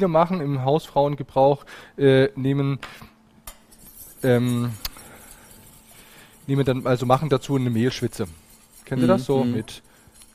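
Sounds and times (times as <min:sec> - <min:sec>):
speech: 0:00.0 - 0:03.1, 0:04.2 - 0:04.9, 0:06.5 - 0:10.3
metal spoon clinking and scraping against a container while spooning guar gum into a sauce: 0:03.5 - 0:10.3.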